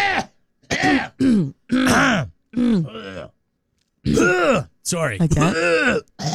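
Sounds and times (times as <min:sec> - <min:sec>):
person imitating throat clearing with guttural voiced bursts: 0:00.0 - 0:03.4, 0:04.0 - 0:04.7, 0:05.3 - 0:06.3
speech: 0:02.6 - 0:03.0, 0:04.9 - 0:06.3.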